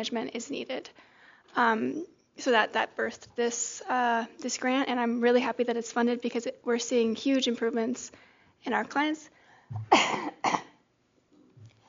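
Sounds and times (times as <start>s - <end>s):
speech: 0.0s - 10.5s
person with a post-infectious cough coughing harshly: 9.7s - 10.8s.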